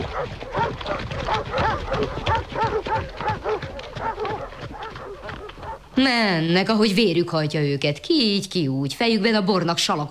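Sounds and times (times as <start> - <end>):
pack of hunting dogs barking and yelping: 0.0 - 6.0
speech: 0.2 - 3.6, 6.0 - 10.0.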